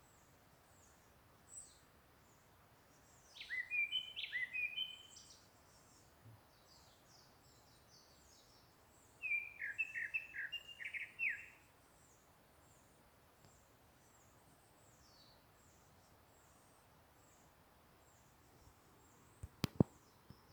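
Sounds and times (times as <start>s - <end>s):
bird chirping: 0.7s - 20.5s
sharp clicks: 19.4s - 19.9s.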